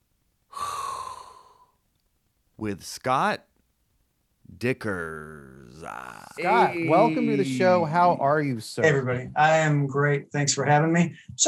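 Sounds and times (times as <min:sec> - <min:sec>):
deep hot breath inhaled sharply through the mouth: 0:00.5 - 0:01.8
speech: 0:02.6 - 0:03.5, 0:04.5 - 0:11.4.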